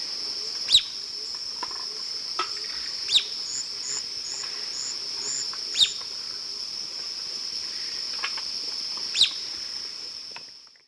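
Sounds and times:
female Myrmoborus myotherinus chip calls in Eastern Lowlands of S. America: 0.7 - 1.0, 2.5 - 6.0, 9.1 - 9.4.

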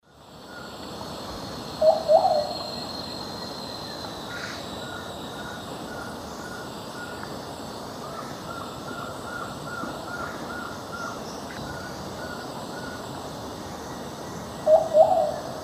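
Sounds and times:
Patagioenas plumbea song in the Eastern Lowlands of South America: 1.8 - 2.7, 14.6 - 15.5.

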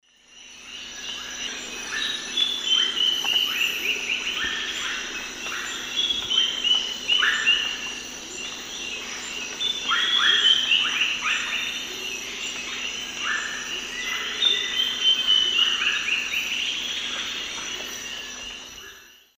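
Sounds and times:
Sclerurus caudacutus singing in the Eastern Lowlands of South America: 0.0 - 19.3.

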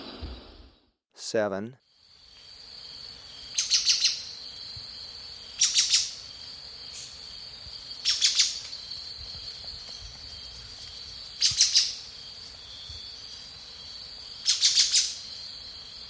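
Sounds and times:
speech: 1.2 - 1.8
steady high insect hum: 1.4 - 16.0
Brown-billed scythebill calling in Ecuador: 3.5 - 4.3, 5.6 - 6.2, 8.0 - 8.8, 11.3 - 13.1, 14.4 - 15.3.

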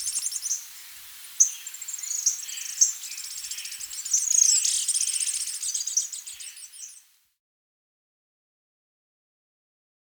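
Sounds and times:
rufous-naped brush finch song: 0.0 - 7.1.

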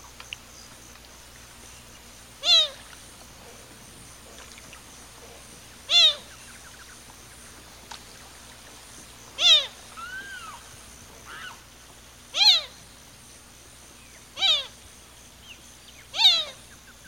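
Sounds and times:
azure gallinule giving nasal falling mewing calls in Ecuador: 2.4 - 2.8, 5.9 - 6.4, 9.4 - 11.7, 12.3 - 12.8, 14.4 - 14.8.

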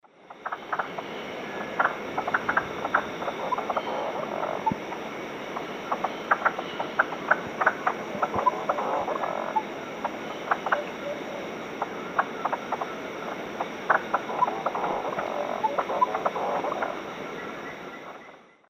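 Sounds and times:
Cyphorhinus arada group calls: 0.4 - 18.3.

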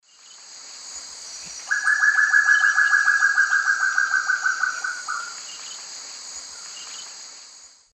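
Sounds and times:
Chamaeza nobilis alarm call in Eastern Lowlands of South America: 1.7 - 5.4.

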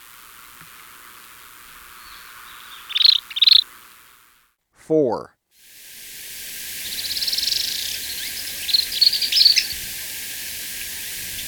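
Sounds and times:
faint hiss: 0.0 - 4.6, 5.6 - 11.4
streak-backed canastero giving high stuttering trills in Ecuador: 2.0 - 3.7, 6.7 - 11.4
speech: 4.9 - 5.4.

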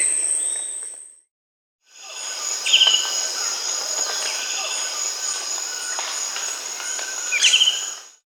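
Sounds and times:
Slender-footed Tyrannulet Zimmerius gracilipes calling in Peru: 2.0 - 8.1.

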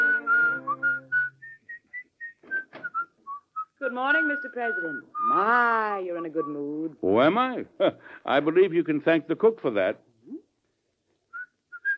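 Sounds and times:
person whistling a tune: 0.0 - 5.5, 11.3 - 11.9
speech: 3.9 - 10.1.

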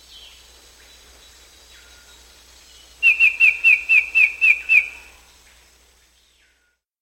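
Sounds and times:
black-headed antbird song of high whistled notes in South America: 3.0 - 5.1.

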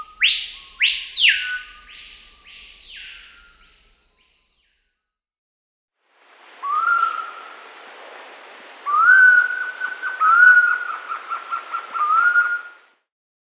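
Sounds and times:
screaming piha whistled call in the Amazon in Peru: 0.0 - 4.3, 6.6 - 7.6, 8.8 - 12.8.

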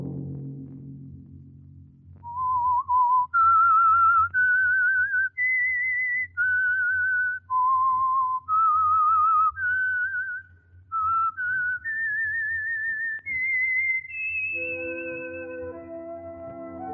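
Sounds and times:
lone whistler whistling a slow wavering melody: 2.2 - 16.8
loud orchestral chord: 14.6 - 16.8.

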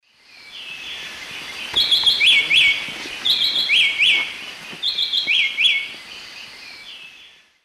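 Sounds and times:
soft background hiss: 0.1 - 7.6
white-breasted wood wren Henicorhina leucosticta singing whistled phrases: 1.7 - 5.9.

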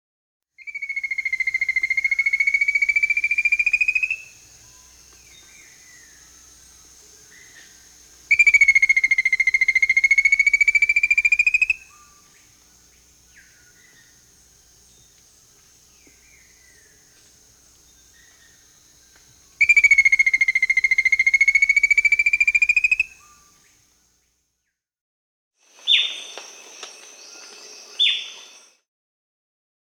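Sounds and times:
Rufous-capped Antthrush Formicarius colma calling in Peru: 0.6 - 23.6.

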